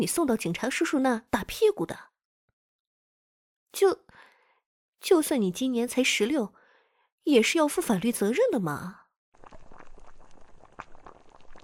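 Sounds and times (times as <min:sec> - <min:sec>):
speech: 0:00.0 - 0:02.1, 0:03.7 - 0:04.2, 0:05.0 - 0:06.6, 0:07.2 - 0:09.0
home-stewed soup simmering and nearly scorching in a pot: 0:09.4 - 0:11.6.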